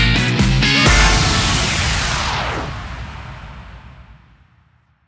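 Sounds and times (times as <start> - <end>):
winning music stinger in D at 128 bpm: 0.2 - 2.6.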